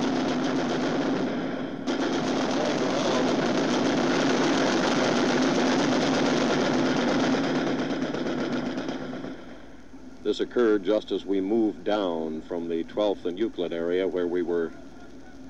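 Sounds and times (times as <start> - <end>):
sustained rapid automatic gunfire: 0.0 - 9.8
deep mechanical drone: 0.0 - 15.4
speech: 10.4 - 14.8.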